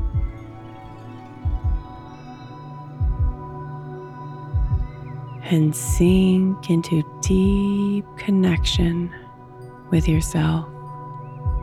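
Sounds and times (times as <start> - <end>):
slow heartbeat thumping: 0.0 - 0.5, 1.4 - 2.1, 3.0 - 3.6, 4.5 - 5.1, 5.8 - 6.6, 7.2 - 9.2, 10.0 - 10.6, 11.4 - 11.6
speech: 5.5 - 9.2, 9.9 - 10.7.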